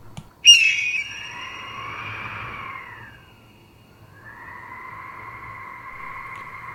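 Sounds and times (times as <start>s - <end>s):
bird squawking high in the sky: 0.4s - 3.2s.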